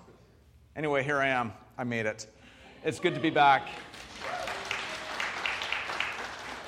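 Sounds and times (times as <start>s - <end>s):
speech: 0.8s - 4.4s
audience applauding: 3.0s - 6.6s.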